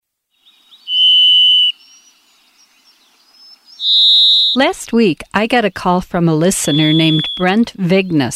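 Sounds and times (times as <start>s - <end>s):
Varied Thrush song: 0.4s - 2.4s, 3.5s - 4.7s, 6.6s - 7.6s
speech: 4.6s - 8.3s.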